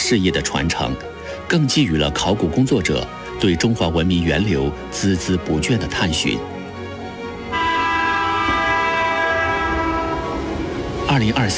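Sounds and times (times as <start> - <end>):
speech: 0.1 - 6.6, 11.2 - 11.5
rumble of the rails under high-speed train: 7.2 - 11.5
high-speed train horn blaring at station: 7.4 - 11.0.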